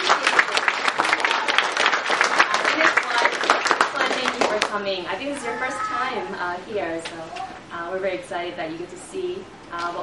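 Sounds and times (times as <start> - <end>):
audience applause: 0.0 - 4.8
speech: 4.7 - 10.0.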